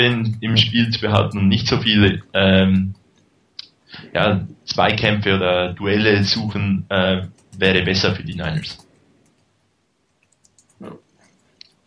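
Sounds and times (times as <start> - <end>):
speech: 0.0 - 3.0, 3.9 - 8.8, 10.8 - 11.0
typing on a computer keyboard: 10.2 - 10.8.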